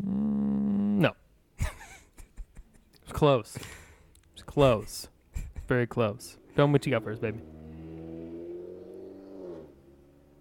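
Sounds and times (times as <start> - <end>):
speech: 1.0 - 1.7, 3.2 - 3.8, 4.5 - 5.1, 5.7 - 7.6
laughter: 1.6 - 3.0, 4.6 - 5.9
motorcycle engine revving on street: 6.2 - 10.3.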